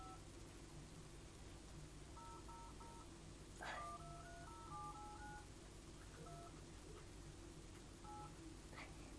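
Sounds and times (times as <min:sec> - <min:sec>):
steady low hum: 0:00.0 - 0:09.1
electronic tone beeps of a toy phone keypad: 0:02.2 - 0:03.0, 0:03.9 - 0:05.5, 0:06.2 - 0:06.5, 0:08.0 - 0:08.3.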